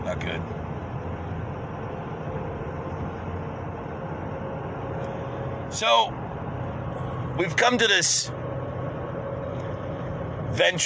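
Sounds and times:
steady rumble of road traffic with engine and tire noise: 0.0s - 10.8s
speech: 0.1s - 0.7s, 5.7s - 6.2s, 7.4s - 8.4s, 10.5s - 10.8s.

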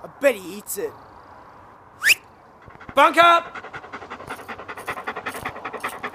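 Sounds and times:
speech: 0.2s - 1.1s, 3.0s - 3.6s
very large dog panting heavily: 2.5s - 6.1s.

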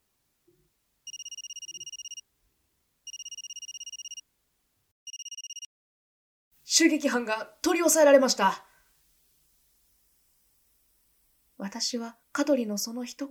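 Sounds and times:
telephone ringing with electronic warbling trills: 1.1s - 2.2s, 3.1s - 4.2s, 5.1s - 5.7s
speech: 6.8s - 8.7s, 11.7s - 13.2s.

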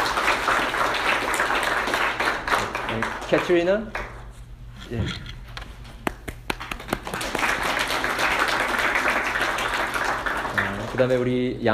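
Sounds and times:
applause from a group of people: 0.0s - 4.1s, 6.3s - 11.4s
speech: 3.3s - 4.0s, 4.9s - 5.3s, 11.0s - 11.7s.

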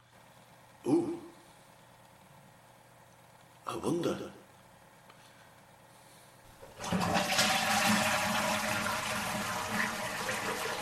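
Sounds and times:
speech: 3.7s - 4.4s
water gushing from a burst pipe: 6.8s - 10.7s.

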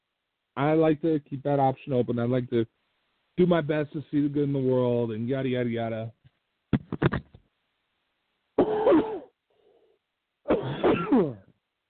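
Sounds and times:
speech: 0.6s - 2.8s, 3.4s - 6.2s
sharp coughs and raspy throat-clearing coughs: 8.6s - 9.4s, 10.5s - 11.5s.

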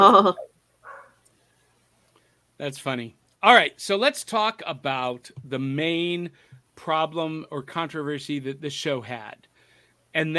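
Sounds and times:
speech: 0.0s - 0.5s, 2.6s - 9.5s, 10.1s - 10.3s
dog barking: 0.8s - 1.2s.

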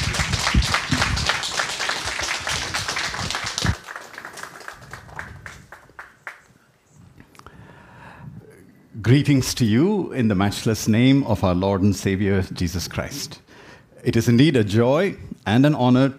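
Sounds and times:
crowd applause: 0.0s - 6.4s
speech: 9.1s - 13.4s, 14.0s - 16.1s.

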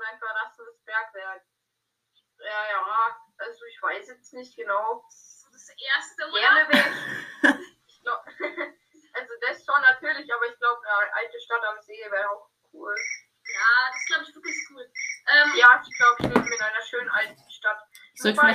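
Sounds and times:
people talking: 0.0s - 1.4s, 2.4s - 8.6s, 9.2s - 18.5s
mobile phone ringing: 13.0s - 17.2s.

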